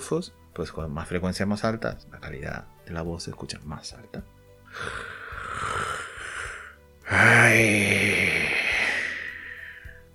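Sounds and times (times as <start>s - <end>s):
speech: 0.1s - 5.8s, 7.1s - 8.4s
person yawning: 4.7s - 10.0s.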